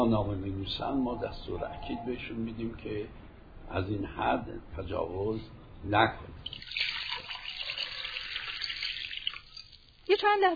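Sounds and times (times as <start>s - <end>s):
speech: 0.0s - 6.8s, 10.1s - 10.5s
water pouring from a tap: 6.5s - 10.2s.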